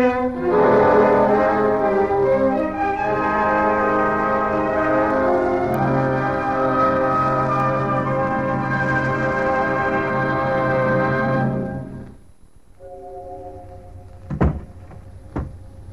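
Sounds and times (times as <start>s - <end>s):
sustained chord: 0.0s - 12.1s, 12.8s - 15.9s
low steady hum: 0.0s - 15.9s
door shutting: 14.1s - 15.6s.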